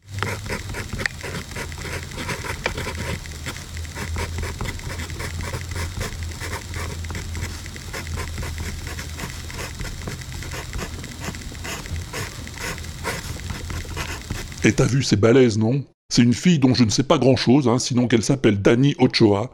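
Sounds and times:
pencil scratching on paper writing a mathematical formula: 0.0s - 14.8s
speech: 14.6s - 19.5s.

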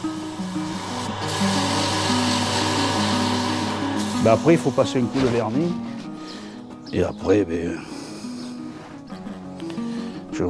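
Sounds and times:
sanding a freshly turned pen, rubbing hiss: 0.0s - 6.4s
speech: 4.2s - 5.9s, 6.9s - 8.0s.

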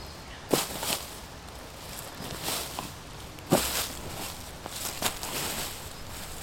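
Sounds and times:
dry dead leaves being swept and scraped from the ground: 0.5s - 6.4s.

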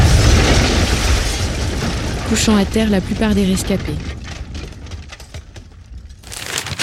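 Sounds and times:
loud explosion at a shell depot inside a factory: 0.0s - 5.0s
crackling debris from a shell depot explosion: 0.0s - 6.8s
speech: 2.3s - 4.2s.

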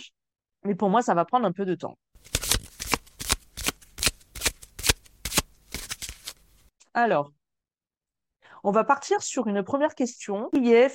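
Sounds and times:
speech: 0.0s - 2.4s, 7.0s - 7.4s, 8.6s - 10.9s
tarot cards shuffled and drawn: 2.2s - 6.7s.

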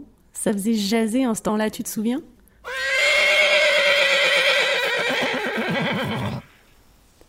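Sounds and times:
speech: 0.4s - 2.4s
horse whinnying: 2.6s - 6.6s.

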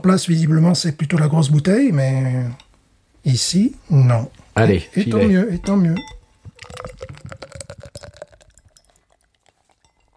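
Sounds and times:
speech: 0.0s - 2.6s, 3.2s - 6.2s
beer being poured and foaming: 6.4s - 10.1s.

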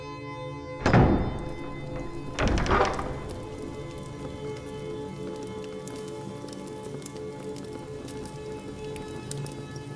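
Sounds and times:
heavy thunks: 0.8s - 4.4s
steady rain falling: 1.3s - 9.9s.

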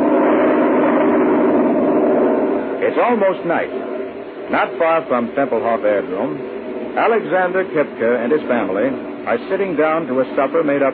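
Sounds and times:
airplane engines droning as planes fly through thick winter fog over an airfield: 0.0s - 10.9s
speech: 2.9s - 3.9s, 4.5s - 10.9s.

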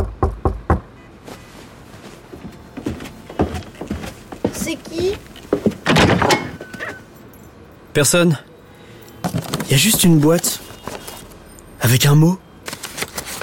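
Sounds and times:
shuffling in the room: 1.1s - 7.2s, 9.2s - 11.4s
speech: 4.7s - 5.6s, 8.0s - 8.5s, 9.7s - 10.7s, 11.8s - 12.4s
door being opened: 5.0s - 7.1s.

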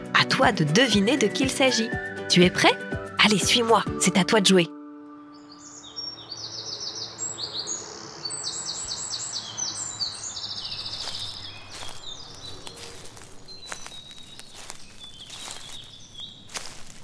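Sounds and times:
speech: 0.4s - 4.8s
birds chirping and trilling over spring countryside fields: 5.2s - 17.0s
crunching footsteps: 10.5s - 17.0s.

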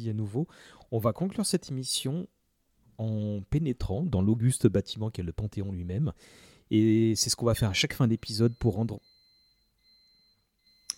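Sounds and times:
speech: 0.0s - 2.4s, 3.0s - 9.1s
dishwasher end-of-cycle alarm beep: 8.1s - 10.9s.

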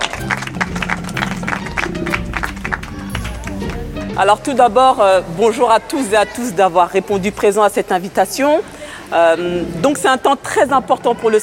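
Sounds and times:
crowd clapping: 0.0s - 4.3s
murmur of voices: 0.0s - 11.4s
speech: 4.2s - 11.4s.

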